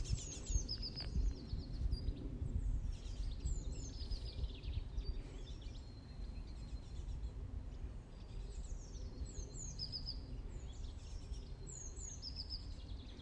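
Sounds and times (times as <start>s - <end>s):
birds chirping and trilling outdoors on a sunny day: 0.0s - 13.2s.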